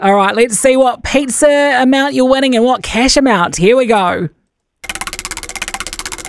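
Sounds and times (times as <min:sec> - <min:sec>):
speech: 0:00.0 - 0:04.4
prize wheel spun in a game for pizza and cash prizes clicking: 0:04.8 - 0:06.2.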